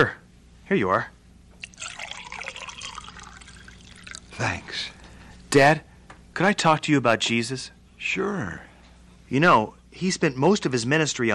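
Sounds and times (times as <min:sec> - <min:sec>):
speech: 0:00.0 - 0:01.2, 0:04.4 - 0:08.7, 0:09.3 - 0:11.3
water pouring into a glass: 0:01.6 - 0:04.5.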